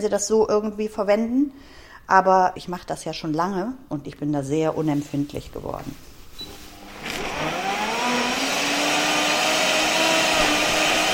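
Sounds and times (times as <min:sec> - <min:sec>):
speech: 0:00.0 - 0:06.5
smoothie blender chopping leafy greens: 0:06.8 - 0:11.1.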